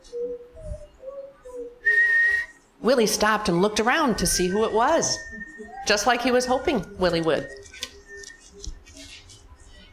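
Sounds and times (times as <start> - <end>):
boy whistling: 0.0 - 2.6, 4.3 - 8.8
speech: 2.8 - 5.3, 5.9 - 7.6.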